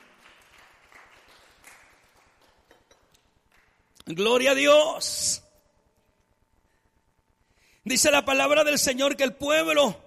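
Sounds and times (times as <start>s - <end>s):
audience applause: 0.0s - 2.7s
speech: 4.1s - 5.4s, 7.9s - 10.0s.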